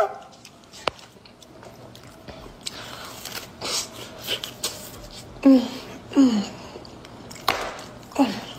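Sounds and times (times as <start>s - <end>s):
woman chewing and smacking while eating cheesy food: 0.2s - 5.3s, 6.7s - 8.1s.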